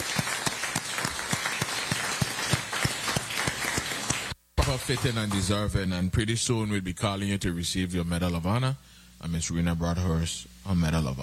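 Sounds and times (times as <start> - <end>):
indoor hearing room audience applauding: 0.0 - 5.6
speech: 4.7 - 11.2.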